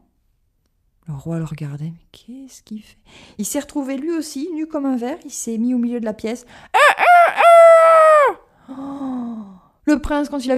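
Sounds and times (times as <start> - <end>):
speech: 1.1 - 6.9, 8.7 - 9.2, 9.9 - 10.5
chicken calls: 6.8 - 8.4
rooster-like crow: 6.8 - 8.4.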